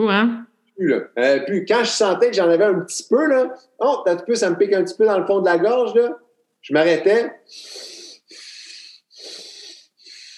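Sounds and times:
speech: 0.0s - 7.9s
deep forceful breaths drawn through the nose: 7.5s - 10.3s.

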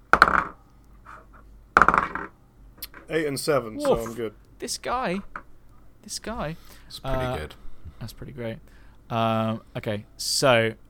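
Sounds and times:
two twelve-sided dice clattering across a hard tabletop: 1.8s - 2.3s
speech: 3.1s - 5.4s, 6.0s - 10.8s.

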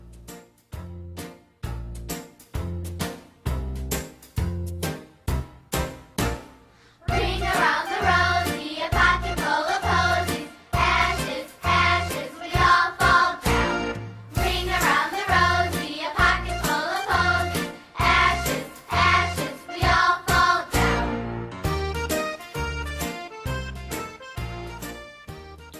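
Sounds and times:
bouncy steady musical accompaniment: 0.0s - 25.7s
person singing a classic British and American children's nursery rhyme song: 7.0s - 21.2s.

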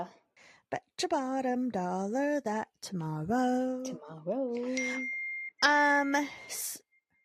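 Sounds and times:
speech: 0.0s - 6.8s
iPhone default text message alert tone: 4.6s - 5.5s.

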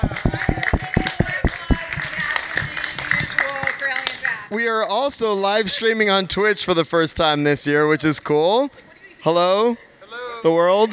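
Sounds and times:
crowd applause: 0.0s - 4.2s
speech: 4.5s - 9.8s, 10.4s - 10.9s.

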